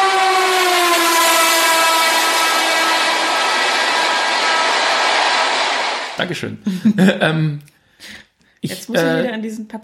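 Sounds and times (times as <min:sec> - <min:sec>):
train passing through: 0:00.0 - 0:06.6
speech: 0:06.2 - 0:09.8.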